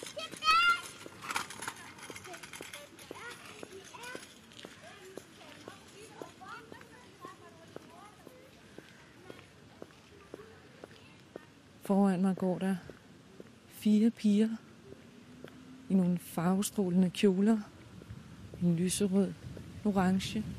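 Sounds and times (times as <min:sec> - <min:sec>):
child's voice: 0:00.0 - 0:11.6
kick scooter wheels clicking over the pavement: 0:00.0 - 0:20.5
soft outdoor noise: 0:00.0 - 0:20.5
speech: 0:11.9 - 0:12.9, 0:13.8 - 0:14.6, 0:15.9 - 0:17.7, 0:18.6 - 0:20.5.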